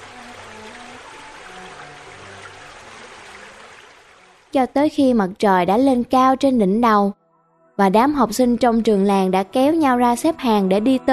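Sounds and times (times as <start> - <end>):
forest stream babbling and gurgling among rocks: 0.0 - 4.6
speech: 4.5 - 7.2, 7.8 - 11.1.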